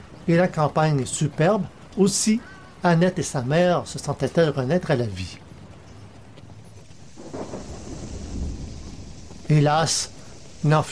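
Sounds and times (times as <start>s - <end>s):
torrential rain pouring down in a violent storm: 0.0s - 10.8s
speech: 0.3s - 5.4s, 9.5s - 10.8s
low rolling thunder: 7.0s - 10.8s.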